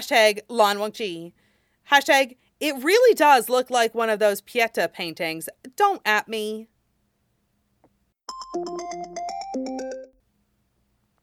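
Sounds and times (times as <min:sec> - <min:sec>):
speech: 0:00.0 - 0:06.7, 0:08.5 - 0:09.2
mobile phone notification alert of bright electronic beeps: 0:08.3 - 0:10.2.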